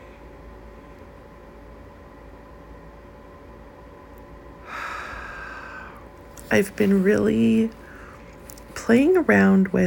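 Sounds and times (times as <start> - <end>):
slow deep breathing in through the nose: 4.6 - 6.2, 7.8 - 8.4
speech: 6.5 - 7.8, 8.9 - 9.8.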